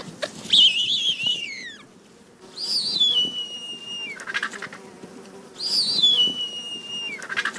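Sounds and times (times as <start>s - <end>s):
bearded vulture calling: 0.4s - 1.9s, 2.5s - 4.8s, 5.6s - 7.5s.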